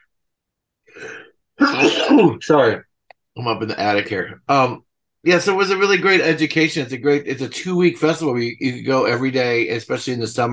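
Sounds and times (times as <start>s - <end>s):
person sneezing in an attic: 1.6s - 2.3s
speech: 2.1s - 10.5s.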